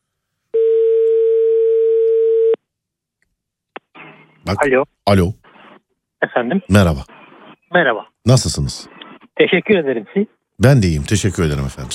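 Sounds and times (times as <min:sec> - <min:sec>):
electronic phone ringback tone: 0:00.6 - 0:02.6
speech: 0:04.5 - 0:05.4, 0:06.2 - 0:11.9.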